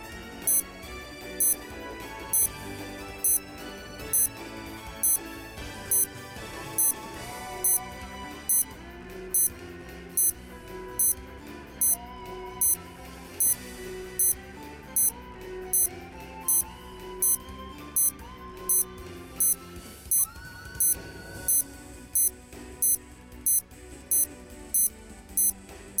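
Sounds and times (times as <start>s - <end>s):
dense continuous music bed: 0.0s - 25.9s
bomb timer counting down with short high beeps: 0.4s - 0.6s, 4.1s - 4.3s, 7.6s - 7.8s, 11.0s - 11.2s, 18.0s - 18.8s, 19.4s - 21.6s, 22.2s - 25.9s.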